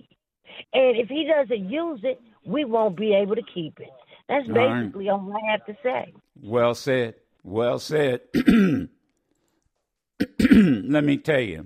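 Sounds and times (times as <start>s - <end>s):
speech: 0.7s - 9.0s, 10.2s - 11.6s
coughing: 8.2s - 9.1s, 10.2s - 11.0s
throat clearing: 8.3s - 9.0s, 10.2s - 10.9s.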